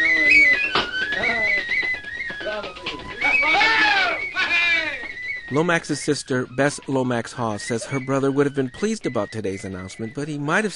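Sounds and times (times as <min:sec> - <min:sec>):
lively tin whistle dance tune played in a kitchen in Ireland: 0:00.0 - 0:10.7
speech: 0:05.5 - 0:10.7.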